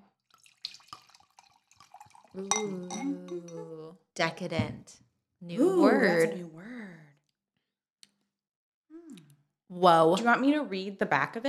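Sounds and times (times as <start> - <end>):
white wine poured into a glass: 0.3 - 3.6
light clinks and drips of glass: 0.3 - 3.7
speech: 2.4 - 6.7, 9.8 - 11.4.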